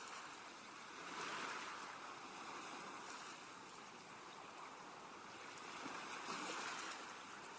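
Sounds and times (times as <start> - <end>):
ocean waves breaking on sand: 0.0 - 7.5.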